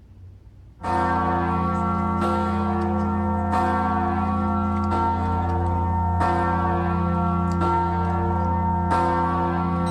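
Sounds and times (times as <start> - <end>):
large newly cast church bell ringing: 0.8 - 9.8.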